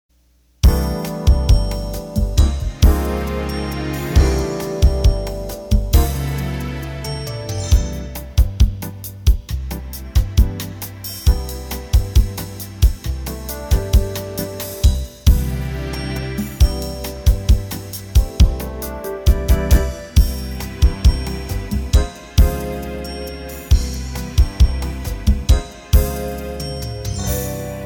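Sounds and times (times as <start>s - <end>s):
Roland accordion playing medium-tempo bossa nova: 0.6s - 27.8s.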